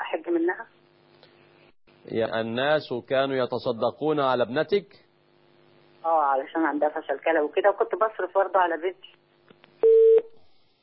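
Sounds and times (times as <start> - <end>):
speech: 0.1 - 0.8, 2.1 - 5.0, 6.0 - 9.2
incoming phone call connecting tone: 9.8 - 10.3.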